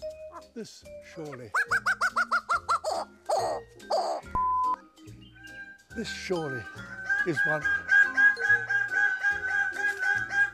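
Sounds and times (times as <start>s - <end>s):
speech: 0.5s - 2.2s, 6.0s - 7.8s
bird calling: 1.4s - 4.3s, 6.6s - 10.5s.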